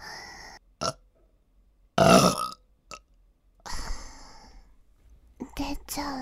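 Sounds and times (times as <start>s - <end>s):
wet burps: 2.0s - 3.0s
speech: 5.8s - 6.1s.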